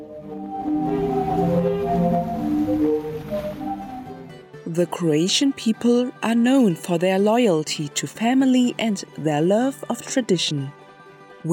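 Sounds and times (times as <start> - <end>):
sea organ tones driven by ocean waves: 0.0 - 4.4
speech: 4.8 - 10.8.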